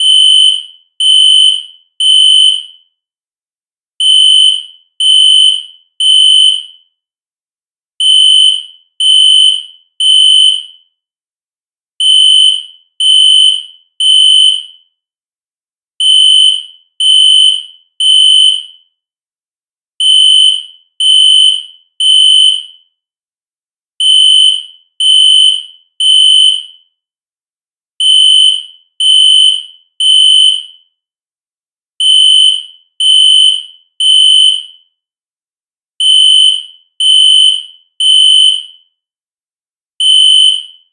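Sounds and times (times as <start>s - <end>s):
synth fire alarm with reverb: 0.0s - 3.0s, 4.0s - 7.0s, 8.0s - 11.0s, 12.0s - 14.9s, 16.0s - 19.0s, 20.0s - 22.9s, 24.0s - 26.9s, 28.0s - 30.8s, 32.0s - 34.8s, 36.0s - 38.9s, 40.0s - 40.9s.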